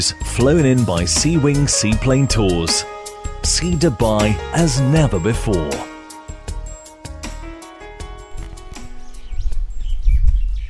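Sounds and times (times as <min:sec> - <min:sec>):
speech: 0:00.0 - 0:05.9
birds chirping and tweeting: 0:08.1 - 0:10.6.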